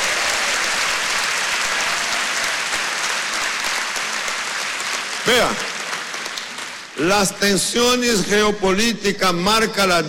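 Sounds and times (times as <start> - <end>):
large crowd applauding loudly: 0.0 - 7.3
speech: 5.3 - 5.7, 7.0 - 10.0.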